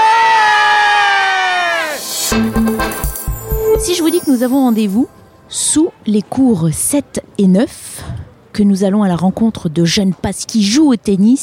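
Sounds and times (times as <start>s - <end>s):
excited shouts and whoops: 0.0s - 2.0s
group of people cheering: 0.0s - 2.5s
speech: 4.0s - 11.4s.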